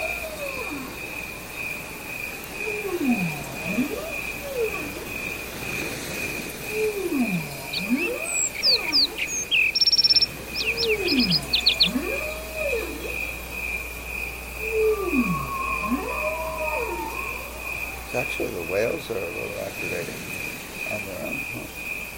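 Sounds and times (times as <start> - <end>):
low swooping moaning tones: 0.0 - 21.8
crickets chirping in a high-pitched trill: 0.0 - 22.1.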